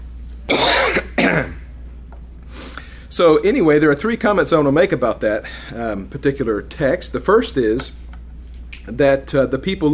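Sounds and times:
harsh coughing bursts: 0:00.5 - 0:01.7
speech: 0:03.2 - 0:08.0, 0:08.8 - 0:09.9.

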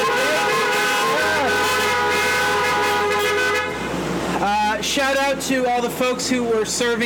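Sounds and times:
car horns honking in a parking lot at a drive-in church service: 0:00.0 - 0:04.3
steady low engine rumble: 0:00.0 - 0:07.0
speech: 0:05.0 - 0:07.0.

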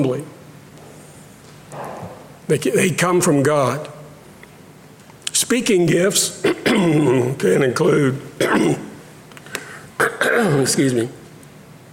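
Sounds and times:
speech: 0:00.0 - 0:00.4, 0:02.5 - 0:04.0, 0:05.4 - 0:08.8, 0:10.6 - 0:11.2
speaker clearing throat during a talk: 0:06.4 - 0:07.2, 0:08.4 - 0:09.0, 0:10.0 - 0:10.7.

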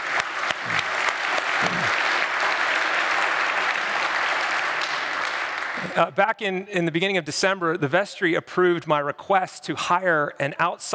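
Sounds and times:
church audience applause: 0:00.0 - 0:06.0
speech: 0:06.0 - 0:10.9.

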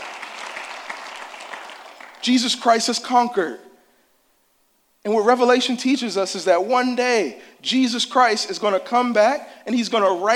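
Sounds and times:
audience applause: 0:00.0 - 0:02.3
speech: 0:02.2 - 0:03.7, 0:05.0 - 0:10.3.

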